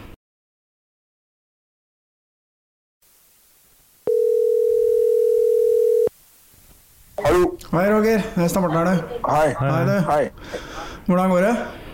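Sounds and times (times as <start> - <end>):
faint telephone line hiss: 3.0 - 8.1
telephone ringing tone of an outgoing call: 4.1 - 6.1
speech: 7.7 - 11.8.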